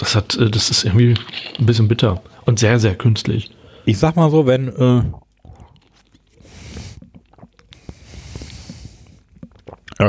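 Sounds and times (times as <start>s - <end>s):
mouth clicks and smacks: 0.0s - 2.4s, 5.0s - 10.0s
wet chewing of soft pieces in an aloe vera drink: 0.0s - 2.5s, 5.1s - 10.0s
speech: 0.0s - 5.2s.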